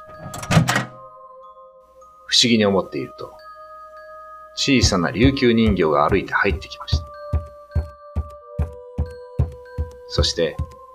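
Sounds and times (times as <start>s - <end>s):
front door opening with handle and hinge noise: 0.0s - 1.1s
speech: 2.3s - 3.4s, 4.6s - 7.1s, 10.1s - 10.7s.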